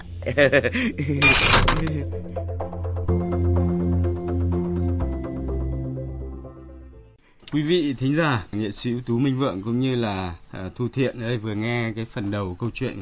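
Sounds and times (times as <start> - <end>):
music: 0.0 - 7.3
speech: 0.2 - 2.6, 7.5 - 12.9
glasses clinking in a toast: 1.2 - 1.9.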